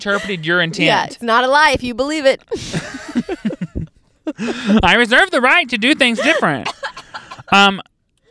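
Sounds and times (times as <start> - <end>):
laughter: 0.0 - 1.2, 2.5 - 7.8
speech: 0.0 - 3.6, 4.4 - 6.8, 7.5 - 7.9
loud exaggerated honking cough: 6.2 - 7.6.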